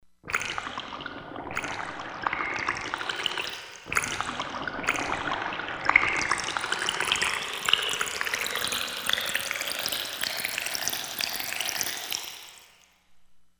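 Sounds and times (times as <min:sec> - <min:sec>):
water pouring: 0:00.3 - 0:12.8.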